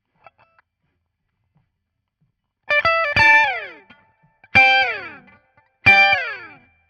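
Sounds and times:
guitar solo: 2.7s - 6.8s.

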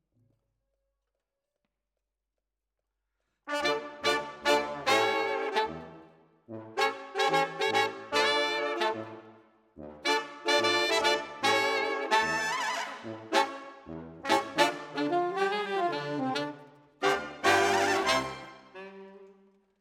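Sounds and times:
saxophone: 3.5s - 5.9s, 6.8s - 9.3s, 10.0s - 13.6s, 14.3s - 19.6s.

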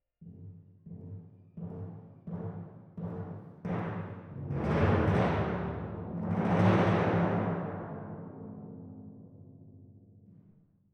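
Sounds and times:
timpani: 0.9s - 9.6s.

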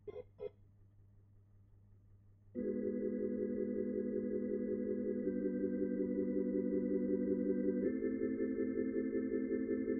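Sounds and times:
Hammond organ playing: 2.6s - 9.9s.

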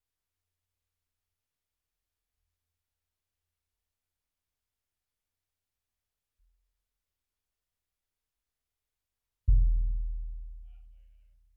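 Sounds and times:
bass drum: 9.5s - 11.3s.

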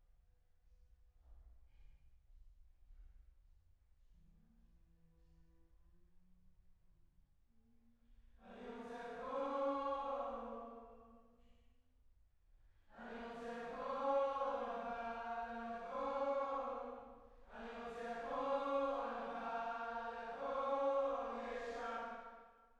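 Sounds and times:
choir singing: 8.4s - 11.0s, 12.9s - 22.5s.

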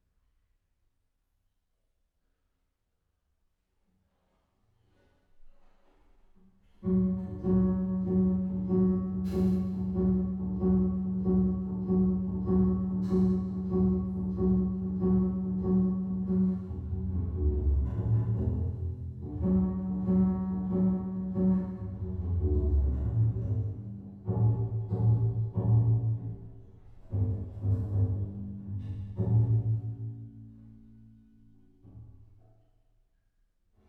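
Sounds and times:
bass: 6.6s - 33.2s.

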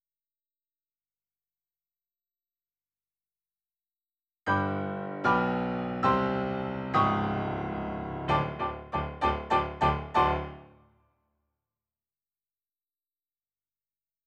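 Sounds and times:
rock and roll piano: 4.5s - 10.7s.

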